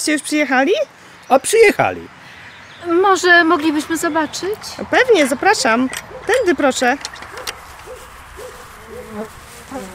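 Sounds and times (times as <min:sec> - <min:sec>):
speech: 0:00.0 - 0:02.2, 0:02.8 - 0:07.3, 0:09.2 - 0:09.9
bee buzzing while circling: 0:08.0 - 0:09.9.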